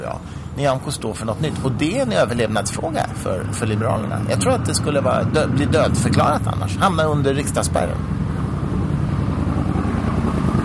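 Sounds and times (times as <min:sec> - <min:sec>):
speech: 0:00.0 - 0:08.2
motorcycle passing by: 0:03.2 - 0:10.6.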